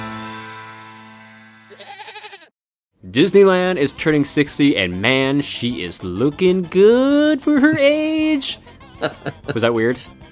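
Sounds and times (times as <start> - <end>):
goat bleating: 1.7 - 2.5
speech: 3.1 - 10.2
laughter: 8.9 - 9.8.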